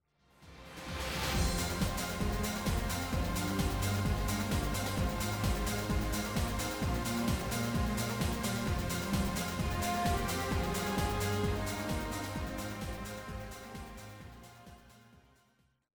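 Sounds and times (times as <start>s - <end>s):
stadium start background music from a game: 0.8s - 15.1s.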